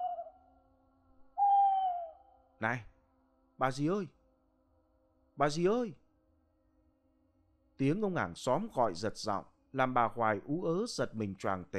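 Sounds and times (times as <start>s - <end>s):
owl hooting mournfully: 0.0s - 0.4s, 1.4s - 2.3s
speech: 2.6s - 2.9s, 3.6s - 4.2s, 5.4s - 6.0s, 7.8s - 11.7s.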